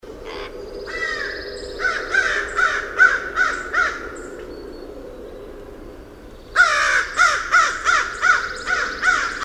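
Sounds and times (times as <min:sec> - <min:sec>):
American crow cawing: 0:00.2 - 0:04.2, 0:06.6 - 0:09.4.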